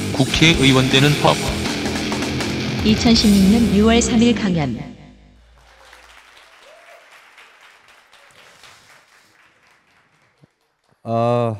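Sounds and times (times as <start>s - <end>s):
speech: 0.2s - 1.6s, 2.8s - 4.9s, 11.1s - 11.5s
audience at a lecture applauding: 5.5s - 11.5s.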